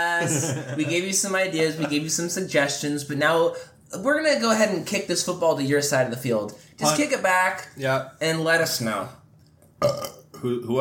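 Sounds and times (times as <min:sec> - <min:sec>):
speech: 0:00.0 - 0:09.2, 0:09.8 - 0:10.7
laughter: 0:00.2 - 0:01.2
burp: 0:09.8 - 0:10.6.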